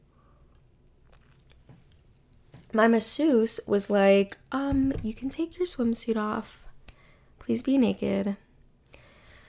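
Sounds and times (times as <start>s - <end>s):
low steady hum: 0.0s - 9.4s
person sipping coffee: 1.0s - 2.0s
speech: 2.7s - 6.7s, 7.5s - 8.4s.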